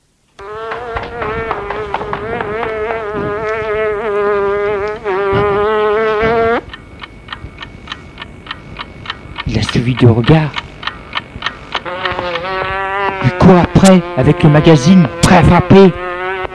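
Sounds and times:
faint regular ticks: 0:00.4 - 0:16.5
housefly buzzing as it flies away: 0:00.4 - 0:16.5
speech: 0:10.0 - 0:10.6, 0:13.5 - 0:16.1.

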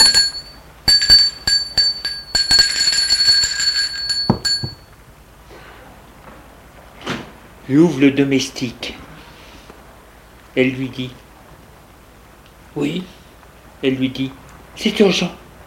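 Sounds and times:
doorbell chiming at the door of a house: 0:00.0 - 0:04.9
speech: 0:07.7 - 0:08.8, 0:10.6 - 0:11.2, 0:12.8 - 0:13.1, 0:13.8 - 0:15.4.

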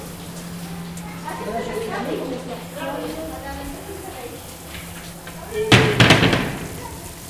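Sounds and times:
voices: 0:00.4 - 0:07.2
loud sharp door bangs: 0:05.3 - 0:07.1.

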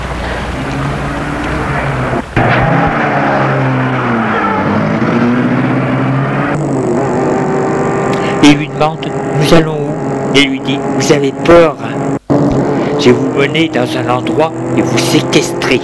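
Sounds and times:
car engine humming and revving as the car pulls away: 0:00.0 - 0:15.8
sharp thump: 0:02.4 - 0:03.0
speech: 0:08.5 - 0:12.0, 0:13.0 - 0:15.8.

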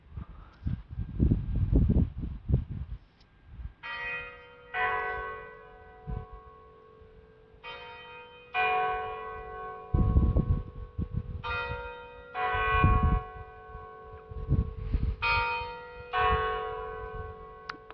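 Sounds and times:
gusts of low rumbling wind: 0:00.0 - 0:07.2, 0:08.6 - 0:17.9
cathedral church bells ringing: 0:03.8 - 0:17.9.

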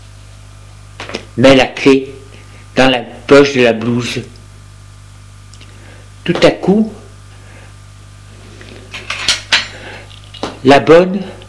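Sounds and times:
speech: 0:01.1 - 0:02.1, 0:02.8 - 0:04.3, 0:06.3 - 0:07.0, 0:10.6 - 0:11.4
dishes and cutlery clinking on a serving tray carrying a plate of meat in sauce: 0:08.9 - 0:09.8.

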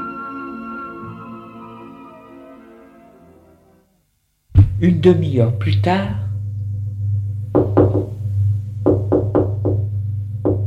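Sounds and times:
steady low hum: 0:04.5 - 0:10.6
speech: 0:04.8 - 0:06.3
knocking on a door: 0:07.5 - 0:08.2, 0:08.9 - 0:10.6.

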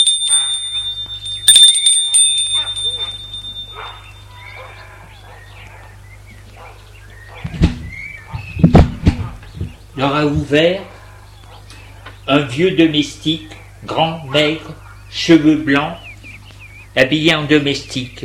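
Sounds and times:
doorbell ringing at front door: 0:00.0 - 0:04.7
dog barking: 0:00.2 - 0:01.0, 0:02.1 - 0:07.6, 0:11.0 - 0:11.7
speech: 0:10.2 - 0:10.9, 0:12.3 - 0:16.0, 0:17.0 - 0:18.2.

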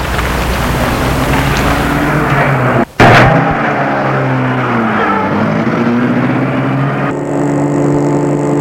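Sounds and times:
car engine starting and driving off through Paris: 0:00.0 - 0:08.5.

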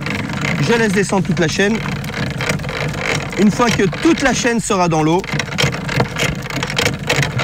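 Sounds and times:
anchored motorboat engine idling: 0:00.0 - 0:07.4
speech: 0:00.6 - 0:02.4, 0:03.4 - 0:05.4.

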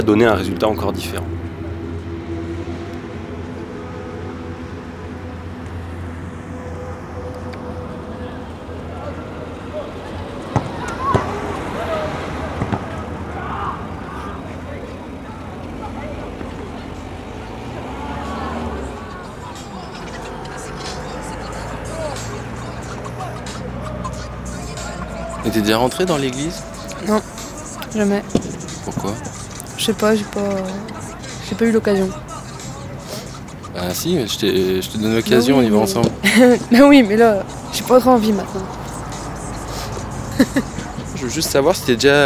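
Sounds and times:
speech: 0:00.0 - 0:01.4, 0:25.5 - 0:27.3, 0:27.9 - 0:28.4, 0:29.0 - 0:32.2, 0:33.9 - 0:38.8, 0:41.3 - 0:42.2
passing vehicle engine rumble heard inside church nave: 0:00.0 - 0:42.2
laughter: 0:07.4 - 0:42.2.

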